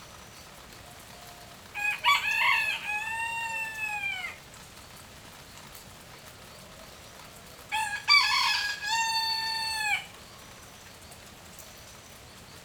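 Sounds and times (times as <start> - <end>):
light rain: 0.0 - 12.6
rooster crowing in light rain: 1.8 - 4.4, 7.7 - 10.2.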